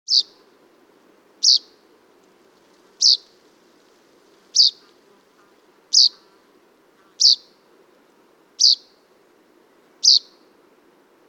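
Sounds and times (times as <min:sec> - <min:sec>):
common chaffinch Fringilla coelebs calls: 0:00.1 - 0:00.4, 0:01.4 - 0:01.8, 0:03.0 - 0:03.4, 0:04.5 - 0:05.0, 0:05.9 - 0:06.4, 0:07.0 - 0:07.6, 0:08.6 - 0:09.0, 0:10.0 - 0:10.4.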